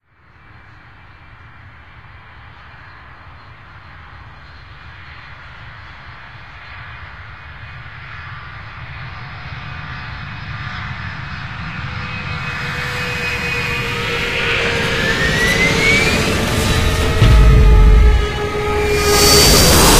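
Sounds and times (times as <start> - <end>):
airport rough crash sequence: 12.4 - 19.9.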